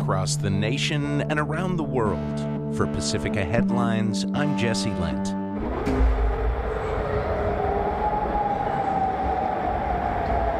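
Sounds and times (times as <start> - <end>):
speech: 0.1 - 5.9
air raid siren wailing in Amman Jordan at night: 5.4 - 10.5.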